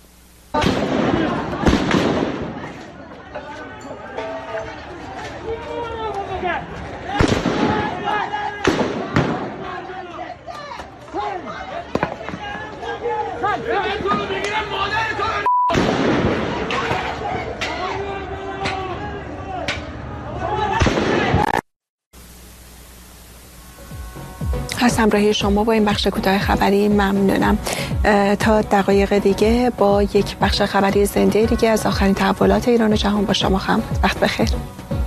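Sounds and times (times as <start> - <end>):
constant hiss of outdoor noise: 0.0 - 1.1, 22.2 - 26.2
people shouting: 0.6 - 1.9, 2.5 - 15.4, 16.3 - 21.5
gunshots fired at protesters: 0.6 - 2.9, 7.1 - 9.7, 15.7 - 17.2, 20.8 - 21.6
speech: 25.0 - 34.8.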